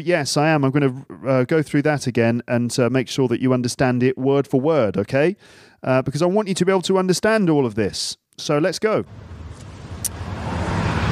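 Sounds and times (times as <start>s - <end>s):
speech: 0.0s - 9.4s
steady low car engine rumble: 9.1s - 11.0s.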